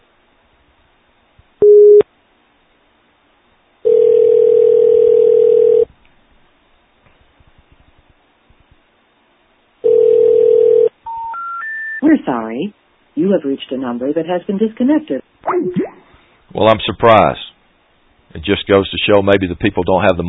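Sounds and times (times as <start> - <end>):
telephone ringback tones on a phone line: 3.8 - 5.9, 9.8 - 12.0
speech: 12.2 - 15.8, 16.6 - 17.4, 18.3 - 20.2.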